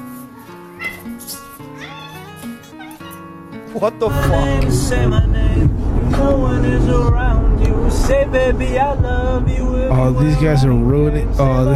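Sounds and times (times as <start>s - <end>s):
cat meowing: 0.8s - 3.2s
steady tonal background: 3.2s - 11.7s
speech: 3.8s - 11.7s.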